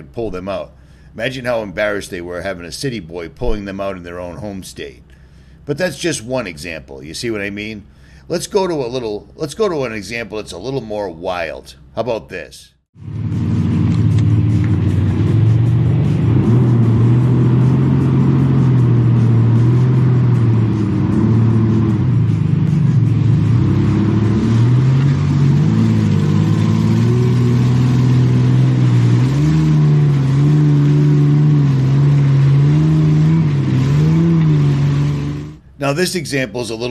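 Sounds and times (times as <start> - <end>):
speech: 0.0 - 13.2, 35.9 - 36.8
1997 Toyota FZJ80 on 37-inch mud tires driving through a mud pile: 13.0 - 35.6.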